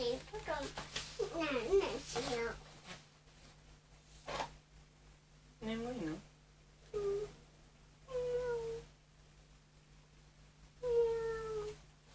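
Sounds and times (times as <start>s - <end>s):
speech: 0.0s - 2.7s, 5.6s - 6.3s
person imitating a cat's meow: 8.1s - 8.9s, 10.8s - 11.8s.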